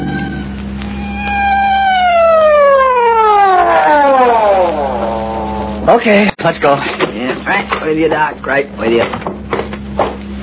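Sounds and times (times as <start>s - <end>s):
emergency vehicle siren wailing: 0.0s - 6.0s
speech: 5.9s - 9.3s.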